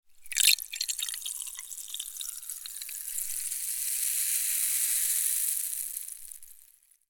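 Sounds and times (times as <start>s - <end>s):
liquid pouring: 0.2s - 6.6s.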